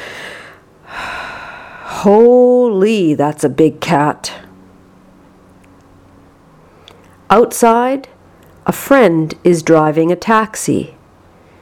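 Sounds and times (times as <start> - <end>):
man taking a deep breath: 0.0 - 2.0
speech: 2.0 - 4.4, 7.3 - 11.0.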